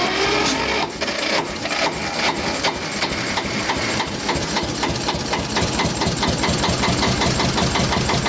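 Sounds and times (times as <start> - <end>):
Steyr diesel tractor engine running: 0.0 - 8.2.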